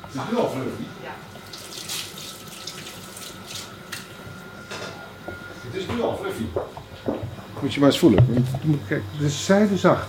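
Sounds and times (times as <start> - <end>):
speech: 0.1 - 1.6, 5.7 - 10.0
single hand being washed under tap water: 1.4 - 4.2
tap water running into a sink: 1.4 - 4.4.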